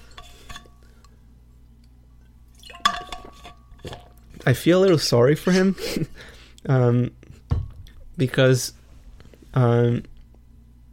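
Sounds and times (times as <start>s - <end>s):
glass clinking: 2.6s - 4.2s
speech: 3.8s - 7.2s, 8.2s - 8.8s, 9.5s - 10.1s.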